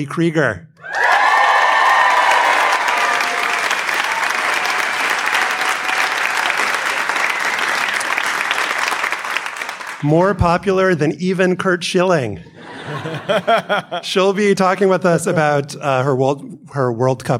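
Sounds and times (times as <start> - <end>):
speech: 0.0 - 0.7, 10.0 - 17.3
live audience clapping: 0.8 - 10.1
laughter: 12.4 - 14.5.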